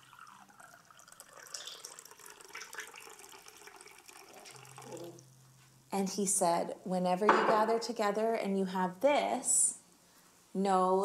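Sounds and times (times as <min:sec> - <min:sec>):
liquid poured into a communion cup: 0:00.0 - 0:05.4
speech: 0:06.0 - 0:09.8, 0:10.6 - 0:11.0.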